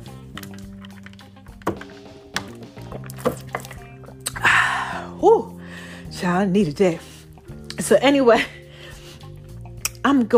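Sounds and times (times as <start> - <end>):
knocks and clinks of the cup: 0.4 - 4.2
speech: 3.2 - 3.5, 6.2 - 7.1, 7.9 - 8.6, 10.1 - 10.3.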